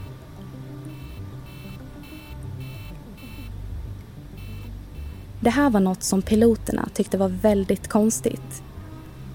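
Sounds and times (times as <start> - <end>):
constant low engine-like rumble: 0.0 - 9.3
aircraft cockpit warning alarm beeping: 0.9 - 3.5, 4.4 - 5.3
speech: 5.4 - 8.7.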